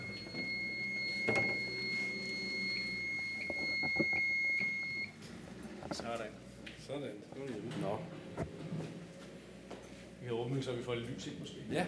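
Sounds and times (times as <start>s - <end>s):
short security alarm keypad bleeps: 0.0s - 5.1s
steady high-pitched security alarm tone while being switched off: 0.0s - 5.2s
speech: 6.1s - 8.5s, 10.2s - 11.8s.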